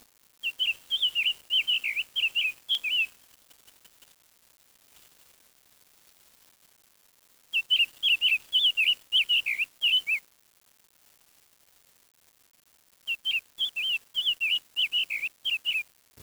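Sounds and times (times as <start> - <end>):
bird chirps and whistles: 0.4 - 3.1, 7.6 - 10.2, 13.1 - 15.8.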